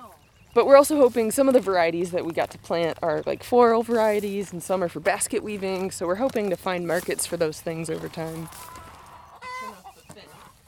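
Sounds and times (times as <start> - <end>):
laying hens clucking and squawking: 0.0 - 10.6
speech: 0.6 - 8.8.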